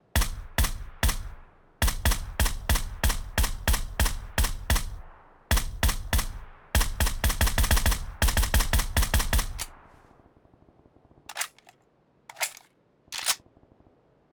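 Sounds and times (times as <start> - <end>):
suppressed Groza single fire: 0.0 - 9.9, 11.3 - 11.7.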